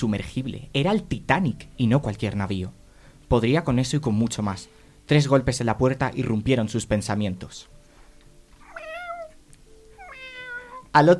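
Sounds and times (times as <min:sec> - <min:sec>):
speech: 0:00.0 - 0:07.8, 0:10.9 - 0:11.1
cat held in someone's arms aboard a ship meowing: 0:08.6 - 0:10.9.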